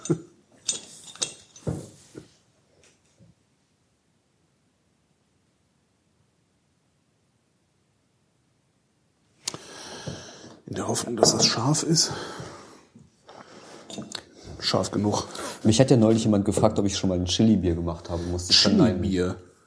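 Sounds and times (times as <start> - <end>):
glass bottle clinking as it is handed over: 0.0 - 1.8
speech: 0.1 - 0.3, 10.9 - 12.6, 14.7 - 19.5.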